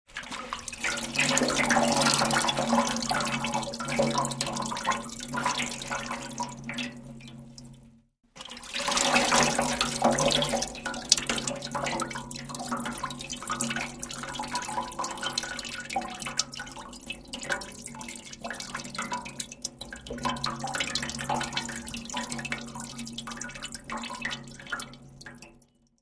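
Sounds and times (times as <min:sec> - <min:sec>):
water pouring into a metal trough: 0:00.1 - 0:26.0.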